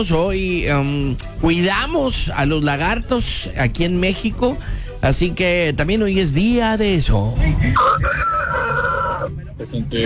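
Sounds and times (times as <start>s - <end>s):
speech: 0.0s - 8.5s, 9.6s - 10.0s
person imitating a rooster's crow in the morning in Mexico: 7.8s - 9.3s.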